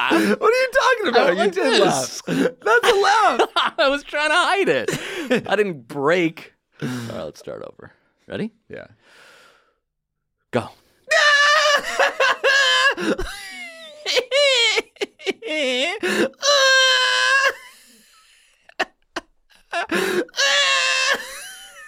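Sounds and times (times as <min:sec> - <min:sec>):
person screaming in high-pitched bursts: 0:00.0 - 0:03.4, 0:11.1 - 0:13.1, 0:15.8 - 0:17.6, 0:20.0 - 0:21.4
giggly bleating-sounding squeals: 0:00.0 - 0:03.6, 0:11.1 - 0:18.0, 0:18.8 - 0:21.8
speech: 0:00.1 - 0:09.2, 0:10.5 - 0:11.2, 0:13.0 - 0:17.6, 0:19.8 - 0:21.3.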